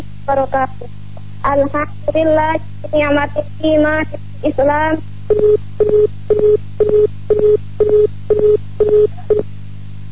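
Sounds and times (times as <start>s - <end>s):
speech: 0.3s - 9.5s
telephone line tones after a dropped call: 5.3s - 9.4s.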